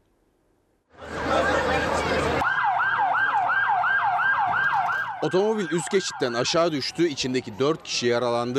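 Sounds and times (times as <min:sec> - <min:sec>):
noisy commotion at a car crash scene: 0:00.9 - 0:08.3
ambulance siren in a fast yelp at a car crash scene: 0:01.0 - 0:07.8
speech: 0:05.2 - 0:08.5.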